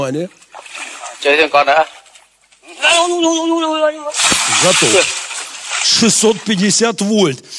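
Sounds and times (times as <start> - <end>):
speech: 0.0 - 0.6, 1.2 - 2.0, 2.8 - 5.2, 5.8 - 7.5
water splashing and sloshing: 0.0 - 7.4
man's loud strained cries and yells: 2.7 - 5.0.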